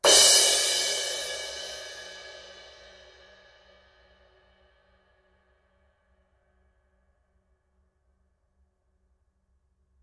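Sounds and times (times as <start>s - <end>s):
18-inch medium thin crash cymbal: 0.0s - 4.6s.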